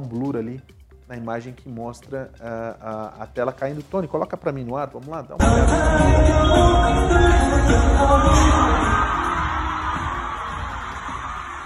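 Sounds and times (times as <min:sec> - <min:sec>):
speech: 0:00.0 - 0:09.0
music with singing: 0:05.4 - 0:11.6
large crowd screaming and yelling: 0:07.8 - 0:11.6.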